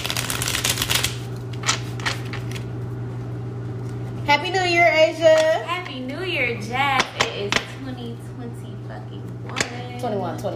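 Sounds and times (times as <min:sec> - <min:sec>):
deck of question cards being shuffled: 0:00.0 - 0:02.8
low hum: 0:00.0 - 0:10.5
speech: 0:04.3 - 0:10.5.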